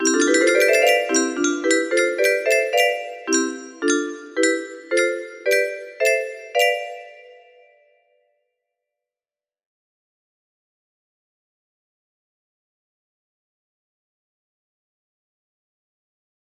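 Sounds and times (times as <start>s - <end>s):
piano test: 0.0s - 7.4s
music box melody: 0.0s - 7.6s.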